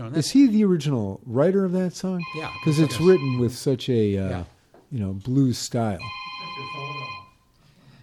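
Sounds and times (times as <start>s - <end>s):
speech: 0.1s - 7.0s
telephone ringing with an electronic trill: 2.2s - 3.7s, 6.0s - 7.4s.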